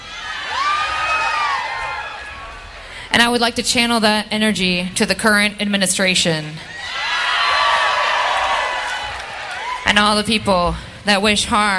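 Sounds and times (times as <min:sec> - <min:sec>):
crowd at a live show screaming together: 0:00.0 - 0:03.0, 0:06.7 - 0:09.9
speech: 0:03.1 - 0:06.8, 0:09.9 - 0:11.7.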